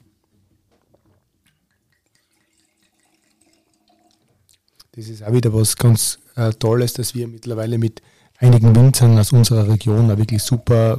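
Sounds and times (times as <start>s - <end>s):
Morillon Muschelkalk 2019 wine being poured into a glass: 1.5s - 4.5s, 9.5s - 10.9s
speech: 5.0s - 10.9s.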